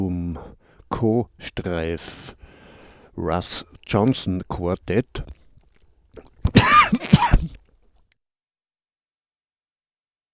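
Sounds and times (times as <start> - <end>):
speech: 0.0 - 2.4, 3.2 - 5.4
harsh coughing and throat clearing: 6.2 - 7.7.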